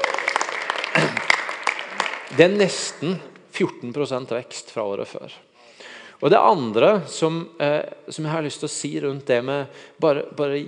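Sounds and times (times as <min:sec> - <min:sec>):
congregation applauding: 0:00.0 - 0:03.2
speech: 0:02.3 - 0:05.5, 0:06.2 - 0:10.6.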